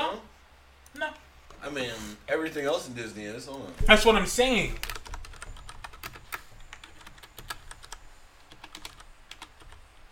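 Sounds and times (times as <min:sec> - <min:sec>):
speech: 0:01.7 - 0:04.9
typing on a computer keyboard: 0:04.7 - 0:10.0.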